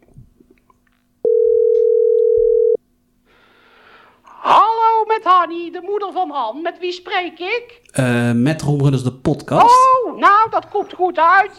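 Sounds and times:
telephone ringback tone on an outgoing call: 1.2s - 2.8s
speech: 5.4s - 11.5s.

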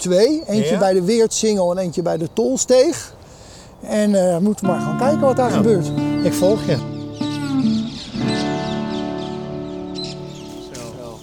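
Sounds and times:
speech: 0.0s - 3.2s, 3.8s - 6.9s
flock of parakeets chattering at a roost: 4.8s - 11.2s.

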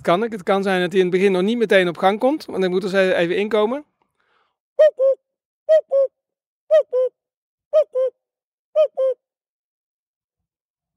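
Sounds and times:
speech: 0.0s - 3.9s, 4.8s - 8.2s, 8.8s - 9.2s
person whistling or hooting an imitation of a cuckoo call: 4.8s - 9.4s.

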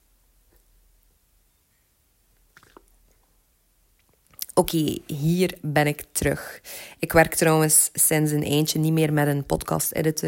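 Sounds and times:
person sipping water: 2.5s - 3.3s
soft wet mouth and swallowing sounds: 2.6s - 3.0s
speech: 4.6s - 10.2s.

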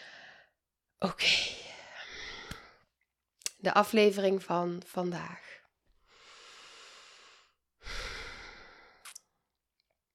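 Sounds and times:
person breathing: 0.0s - 0.6s, 1.5s - 2.8s, 6.0s - 9.1s
speech: 1.0s - 1.4s, 3.6s - 5.4s.

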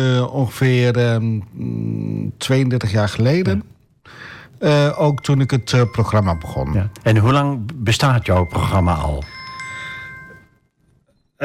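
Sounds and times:
speech: 0.0s - 9.4s
phone ringtone for an incoming call with bell-like tones: 4.7s - 7.4s, 8.2s - 11.4s.

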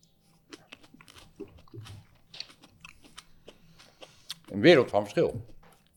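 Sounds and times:
wet chewing of a datterino tomato with squelching: 0.0s - 5.9s
biting into a small juicy datterino tomato: 0.2s - 5.9s
speech: 4.5s - 5.5s.

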